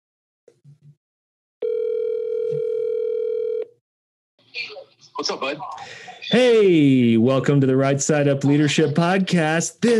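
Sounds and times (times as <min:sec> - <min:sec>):
telephone dial tone: 0:01.6 - 0:03.7
speech: 0:04.6 - 0:09.9.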